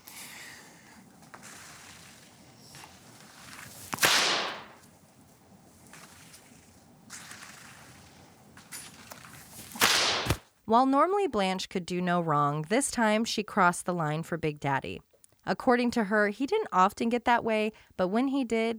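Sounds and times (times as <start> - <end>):
quieter rustling and faint movement noises: 0.0 - 10.4
whip cracking at the speed of sound: 1.0 - 10.4
speech: 10.7 - 18.7.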